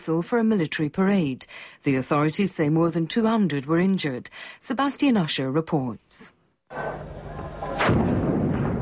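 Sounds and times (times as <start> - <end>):
speech: 0.0 - 8.1
rumbling din: 6.7 - 8.8
bomb explosion at a military parade rehearsal in central Sana'a, Yemen: 6.8 - 8.8.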